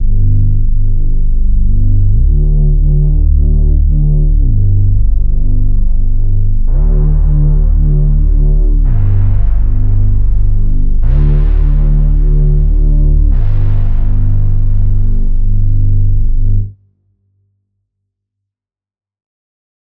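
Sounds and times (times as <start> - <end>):
hybrid glide bass synth: 0.0 - 16.7.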